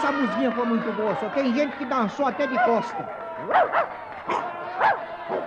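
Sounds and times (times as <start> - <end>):
speech: 0.2 - 5.4
dog up for auction barking: 3.5 - 5.4.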